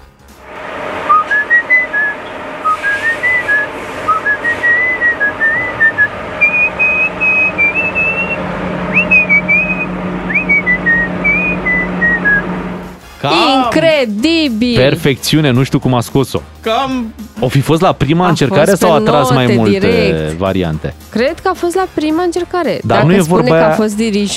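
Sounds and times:
low steady hum: 0:00.4 - 0:13.0
person whistling a lively melody: 0:01.1 - 0:12.5
speech: 0:13.2 - 0:24.3.

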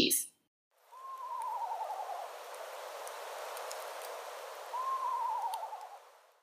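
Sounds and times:
soft steady hiss: 0:00.8 - 0:06.4
eastern screech owl whinnying trills: 0:00.9 - 0:02.3, 0:04.7 - 0:06.1.

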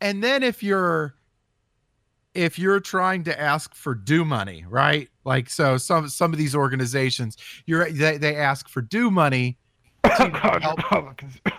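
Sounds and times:
speech: 0:00.0 - 0:01.2, 0:02.4 - 0:11.5
person coughing: 0:10.0 - 0:11.5.

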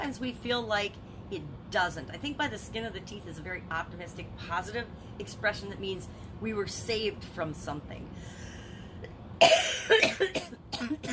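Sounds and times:
speech: 0:00.0 - 0:08.5, 0:09.4 - 0:11.1
person coughing harshly: 0:09.4 - 0:11.1.

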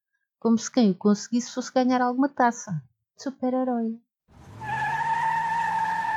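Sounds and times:
speech: 0:00.4 - 0:04.0
car tires screeching as a vehicle launches from a traffic light in Greater Lisbon: 0:04.3 - 0:06.1
rising car engine roar: 0:04.3 - 0:06.1.

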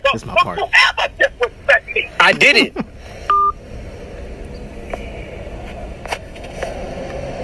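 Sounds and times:
speech: 0:00.1 - 0:01.1, 0:02.3 - 0:02.8
short loud electronic telephone tone after call hung up: 0:03.3 - 0:03.6.

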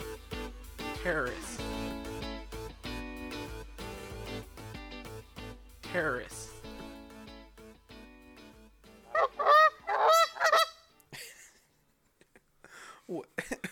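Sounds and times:
speech: 0:01.0 - 0:01.6, 0:05.9 - 0:06.5
goose honking: 0:09.1 - 0:10.9.

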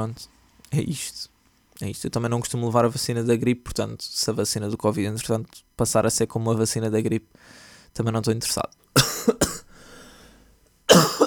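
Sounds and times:
speech: 0:00.0 - 0:09.4
faint breath noise: 0:07.3 - 0:08.0, 0:09.7 - 0:10.7
harsh coughing from a person who is unwell: 0:09.0 - 0:09.8, 0:10.9 - 0:11.2.

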